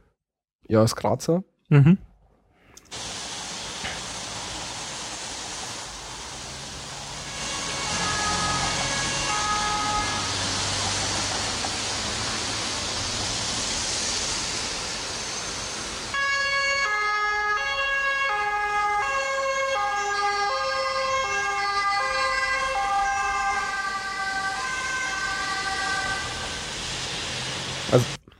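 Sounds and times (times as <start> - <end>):
speech: 0.7 - 2.1
broad wash of road noise: 2.8 - 28.3
two-tone sirens of two passing ambulances: 5.4 - 14.4, 15.0 - 28.2.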